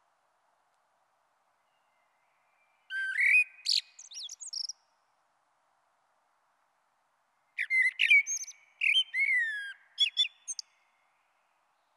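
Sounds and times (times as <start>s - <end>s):
Common blackbird singing: 2.9s - 4.7s, 7.6s - 10.6s.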